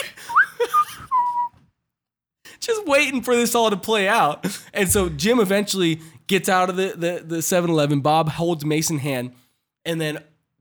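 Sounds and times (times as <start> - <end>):
person waiting in line whistling idly: 0.2 - 1.6
speech: 2.7 - 10.6.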